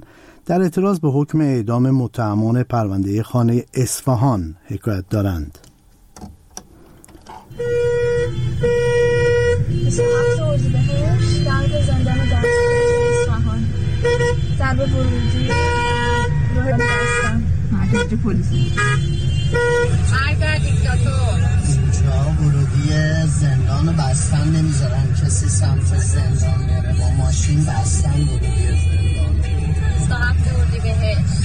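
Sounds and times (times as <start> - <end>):
speech: 0.5 - 5.6, 7.6 - 9.0, 9.9 - 12.5, 14.6 - 15.8, 16.6 - 21.5, 22.3 - 31.4
dense traffic noise: 3.0 - 31.4
car horns honking: 7.3 - 31.4.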